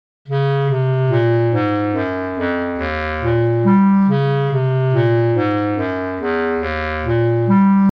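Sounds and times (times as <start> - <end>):
sampled bass clarinet passage: 0.3 - 7.9.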